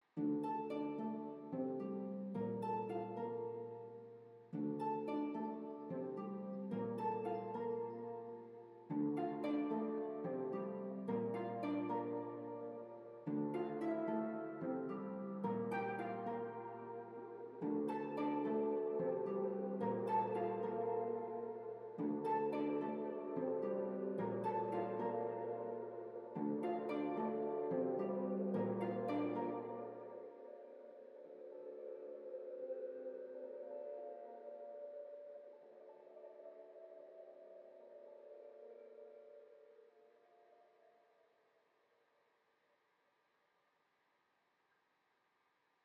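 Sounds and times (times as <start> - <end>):
ambience: 0.0 - 41.4.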